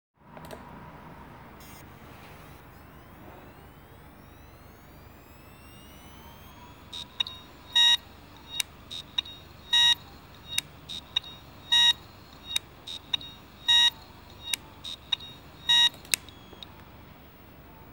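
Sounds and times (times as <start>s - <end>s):
Hitachi 3.5 1 TB damaged hard drive heads: 5.7s - 16.9s.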